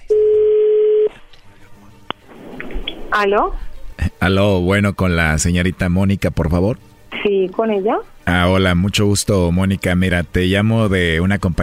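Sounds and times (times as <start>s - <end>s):
telephone call ringing on the line: 0.1s - 1.1s
speech: 3.2s - 11.6s.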